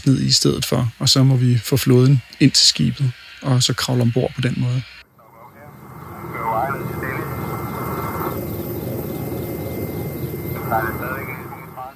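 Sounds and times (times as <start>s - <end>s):
speech: 0.0s - 5.0s
helicopter rotor blades thumping: 0.0s - 11.9s
voices: 0.0s - 11.9s
helicopter engine and wind roar: 5.1s - 11.9s.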